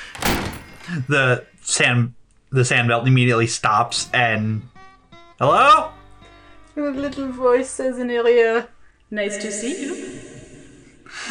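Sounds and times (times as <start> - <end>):
door slamming shut with a loud sharp bang: 0.0 - 1.2
speech: 0.9 - 4.7, 5.4 - 6.0, 6.8 - 10.1, 11.1 - 11.3.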